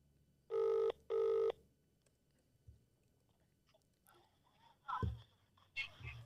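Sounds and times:
electronic phone ringing over a speakerphone: 0.5s - 1.6s.

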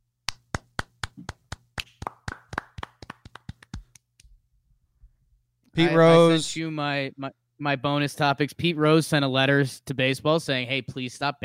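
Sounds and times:
single person clapping hands: 0.2s - 4.4s
speech: 5.8s - 11.4s.

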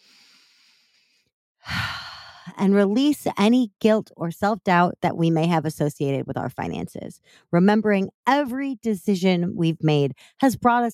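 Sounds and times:
person breathing deeply: 0.0s - 2.5s
speech: 2.6s - 10.9s.

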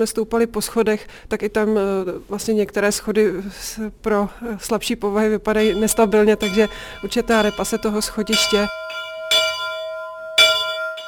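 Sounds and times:
speech: 0.0s - 8.8s
church bell tolling: 5.6s - 11.0s.

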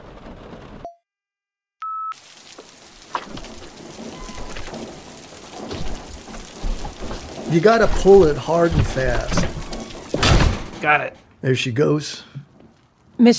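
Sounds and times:
water drips: 2.1s - 10.2s
steady dense rain hissing: 2.1s - 13.1s
thumps: 3.1s - 11.4s
speech: 7.5s - 9.5s, 10.8s - 12.3s, 13.2s - 13.3s.

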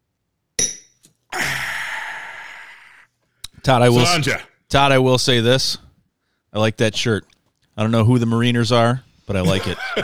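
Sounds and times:
glasses clinking in a toast: 0.6s - 1.0s
speech: 3.6s - 5.8s, 6.5s - 10.0s
laughter: 9.4s - 10.0s.

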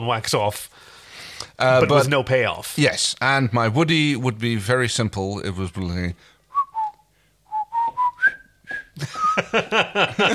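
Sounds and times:
speech: 0.0s - 6.3s, 9.0s - 10.3s
person whistling a short jaunty march-like tune: 6.5s - 9.4s
laughter: 9.0s - 10.3s.

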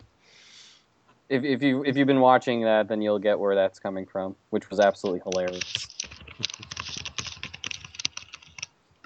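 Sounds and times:
speech: 1.3s - 5.9s
fast angry typing on computer keyboard: 4.8s - 9.0s.

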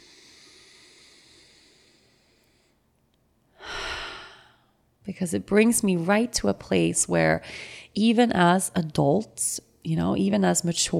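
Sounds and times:
deep breath: 0.0s - 2.9s, 3.5s - 4.8s, 7.4s - 8.0s
speech: 5.0s - 10.9s.

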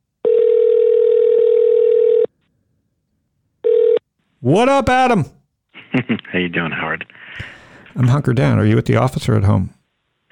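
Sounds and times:
telephone dial tone while dialing a call: 0.2s - 2.3s, 3.6s - 4.0s
speech: 4.5s - 9.8s.

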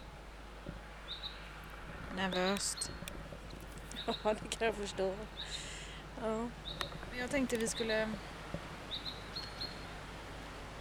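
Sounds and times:
soft steady hiss: 0.0s - 10.7s
bird chirping: 1.0s - 1.5s, 2.2s - 3.0s, 3.6s - 5.7s, 6.6s - 7.0s, 8.9s - 10.0s
speech: 2.2s - 3.1s, 4.0s - 8.7s.

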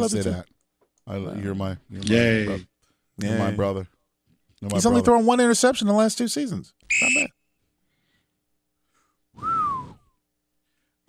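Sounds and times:
speech: 0.0s - 4.0s, 4.6s - 7.4s
short whistled tune fragment: 6.9s - 7.4s, 9.4s - 10.2s.

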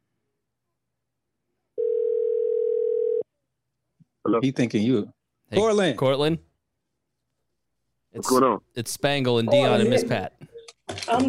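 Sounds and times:
electronic telephone ring tone on an outgoing call: 1.8s - 3.2s
speech: 4.3s - 6.5s, 8.2s - 11.2s.

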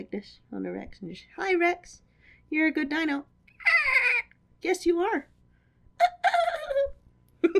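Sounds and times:
speech: 0.0s - 4.0s, 4.6s - 5.3s, 6.0s - 6.4s
human voice imitating a bald eagle call: 3.6s - 4.3s.

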